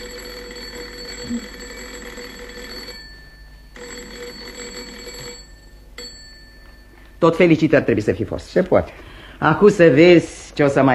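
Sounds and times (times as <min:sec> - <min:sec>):
telephone ringing unanswered with buzzing bell tone: 0:00.0 - 0:07.7
speech: 0:01.3 - 0:01.6, 0:07.2 - 0:10.9.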